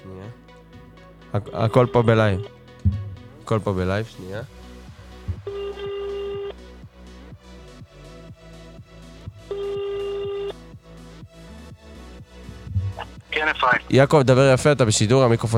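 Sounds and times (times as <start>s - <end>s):
faint steady rhythmic low beat: 0.6s - 13.9s
speech: 1.3s - 2.6s, 3.5s - 4.6s, 13.9s - 15.5s
telephone ringback tone as a call is placed: 1.6s - 2.5s, 5.5s - 6.5s, 9.5s - 10.5s.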